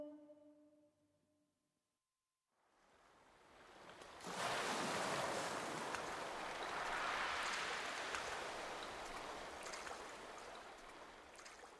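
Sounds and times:
incoming tide water lapping around a small Greek boat: 2.9s - 11.7s.

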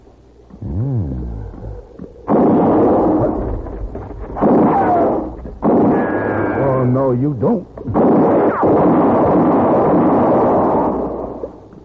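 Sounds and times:
loud gunshot blast during an armed standoff: 2.3s - 3.4s, 4.4s - 6.8s, 7.9s - 11.4s
speech: 7.1s - 8.1s.

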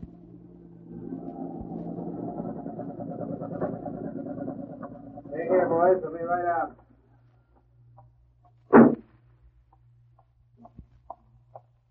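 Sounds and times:
heavy truck engine rumbling: 0.0s - 6.6s.

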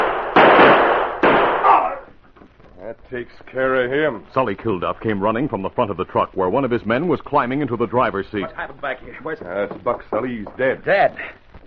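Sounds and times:
gunshots fired point blank: 0.0s - 2.1s
speech: 3.1s - 11.4s.

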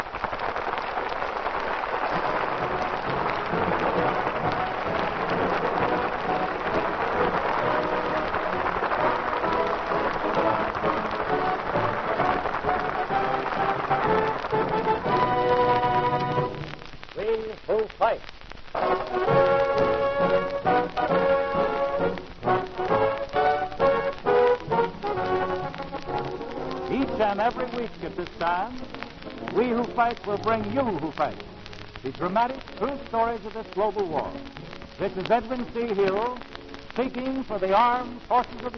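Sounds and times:
heavy rain pouring: 0.0s - 38.7s
speech: 30.0s - 38.7s.

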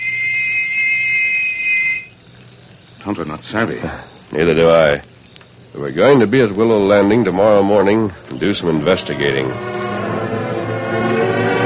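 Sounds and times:
whistle blown in a long, loud, steady blast: 0.0s - 2.2s, 8.8s - 11.6s
faint low hum: 0.0s - 11.6s
speech: 3.0s - 5.1s, 5.8s - 9.9s.

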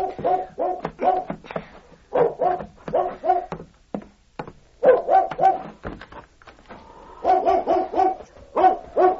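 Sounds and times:
dog barking at night: 0.0s - 1.3s, 2.1s - 3.6s, 4.8s - 5.7s, 7.2s - 9.1s.

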